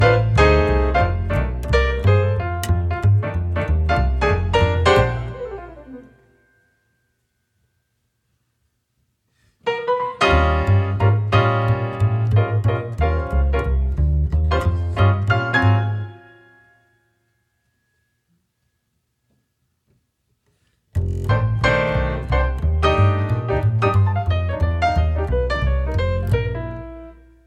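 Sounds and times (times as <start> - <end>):
bass: 0.0 - 6.2, 10.2 - 16.2, 20.9 - 27.4
piano: 0.0 - 7.2, 9.6 - 18.6, 20.9 - 27.4.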